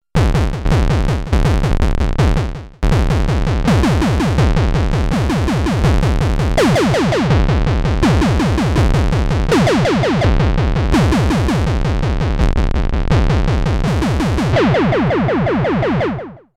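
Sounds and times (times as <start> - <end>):
analog drum: 0.2 - 16.3.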